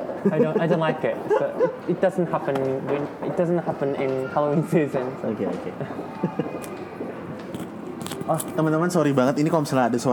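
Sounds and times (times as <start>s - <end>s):
low busy mall noise: 0.0s - 10.1s
laughter: 0.2s - 1.9s, 5.7s - 6.9s
speech: 0.2s - 6.8s, 8.3s - 10.1s
people chewing and biting food in a mall: 7.4s - 8.6s.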